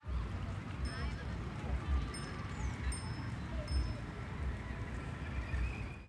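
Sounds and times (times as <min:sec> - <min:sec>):
bicycle passing: 0:00.0 - 0:06.0
bicycle bell ringing: 0:00.8 - 0:01.3, 0:02.0 - 0:04.3.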